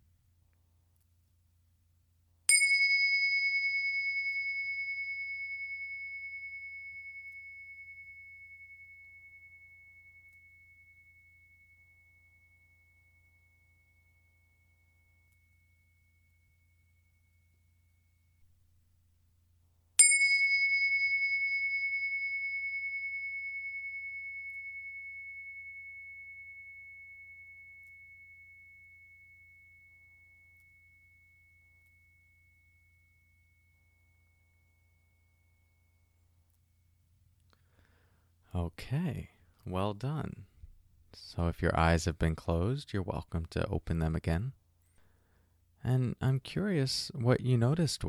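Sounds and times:
meditation bell ringing: 2.5 - 18.4, 20.0 - 36.2
speech: 38.6 - 40.5, 41.1 - 44.6, 45.8 - 48.0.

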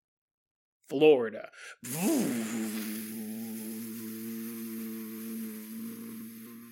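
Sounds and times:
speech: 0.9 - 3.2
voice imitating a hovercraft engine buzzing: 1.8 - 6.7.

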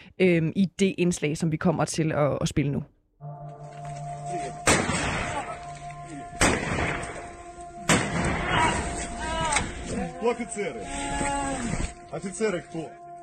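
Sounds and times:
speech: 0.2 - 3.7, 10.2 - 13.0
loud gunshots at captured soldiers: 4.6 - 5.6, 6.4 - 7.3, 7.9 - 8.9
agitated voices and shouting: 8.4 - 11.9.

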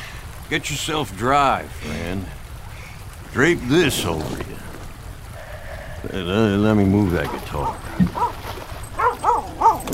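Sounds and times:
speech: 0.5 - 2.4, 3.3 - 4.6, 6.0 - 8.5
puppy yipping barks: 8.1 - 8.4, 9.0 - 9.9.

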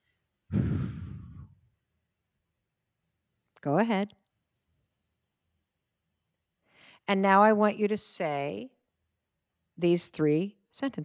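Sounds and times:
deep breath let out as a long soft sigh: 0.5 - 1.6
speech: 3.6 - 4.2, 7.1 - 8.8, 9.8 - 11.0.

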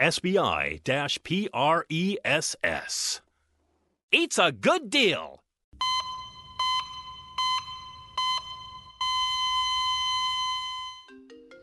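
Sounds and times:
speech: 0.0 - 3.2, 4.1 - 5.9
phone ringtone for an incoming call: 5.8 - 11.6.

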